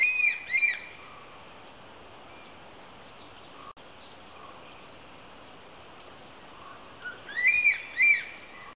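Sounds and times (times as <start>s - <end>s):
crested serpent eagle calling with ringing whistles at Dhoni: 0.0s - 1.2s, 7.0s - 8.7s.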